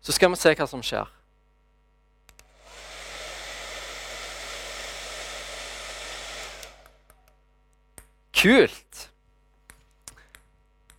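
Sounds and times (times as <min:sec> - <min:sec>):
speech: 0:00.0 - 0:01.2, 0:08.4 - 0:09.1
hair dryer blowing air: 0:02.4 - 0:07.2.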